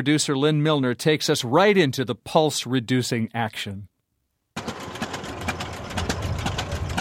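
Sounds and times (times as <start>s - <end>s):
speech: 0.0s - 3.9s
two-cylinder tractor engine running slowly: 4.6s - 7.0s.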